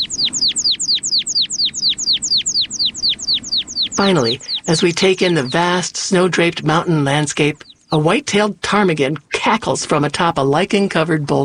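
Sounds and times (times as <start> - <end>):
American pipit trilling high thin notes in rocky alpine zone: 0.0 - 8.6
speech: 4.0 - 11.4.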